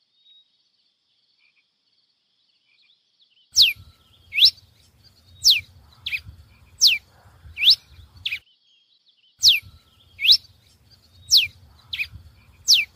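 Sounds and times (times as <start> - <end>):
pileated finch Coryphospingus pileatus song: 0.0 - 12.9
soft low rumble: 3.7 - 8.4, 9.4 - 12.9.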